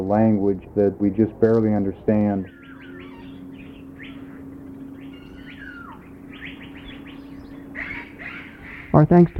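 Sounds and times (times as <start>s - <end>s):
many birds in a tropical rainforest aviary chirping and warbling: 0.0s - 9.3s
steady low hum: 0.0s - 9.3s
speech: 0.1s - 2.6s, 8.9s - 9.3s.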